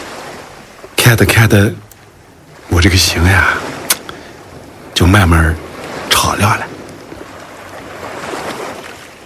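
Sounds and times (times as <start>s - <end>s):
Yellow River water flowing toward the sea: 0.0s - 9.2s
speech: 1.1s - 1.9s, 2.7s - 3.7s, 5.0s - 6.7s.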